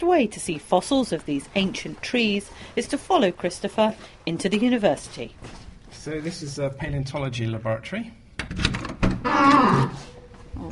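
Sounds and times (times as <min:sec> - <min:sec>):
speech: 0:00.0 - 0:10.6
squeaky door creaking open: 0:09.0 - 0:10.3.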